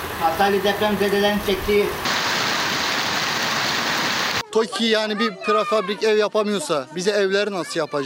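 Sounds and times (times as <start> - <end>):
speech: 0.2 - 2.1, 4.5 - 8.0
heavy evening rain falling on a container city for earthquake survivors in Hatay, Turkey: 1.6 - 4.4.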